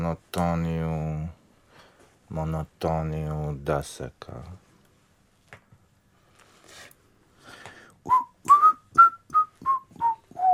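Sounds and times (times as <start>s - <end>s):
speech: 0.0s - 1.4s, 2.3s - 4.6s
person whistling monotonously: 8.1s - 10.5s.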